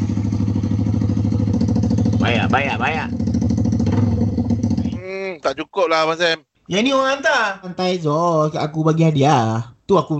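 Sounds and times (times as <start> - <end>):
voice imitating a motorcycle exhaust by mouth: 0.0 - 6.0
speech: 2.3 - 3.2, 5.1 - 10.1.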